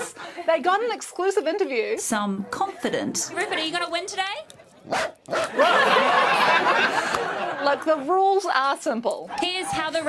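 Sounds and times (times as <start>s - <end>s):
speech: 0.4s - 10.0s
dachshund barking: 4.9s - 5.5s
laughter: 5.3s - 8.4s.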